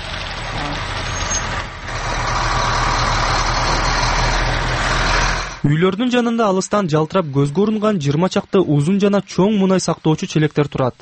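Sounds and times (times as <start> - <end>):
heavy machinery engine rumble at a factory construction site: 0.0 - 5.7
speech: 5.6 - 10.9.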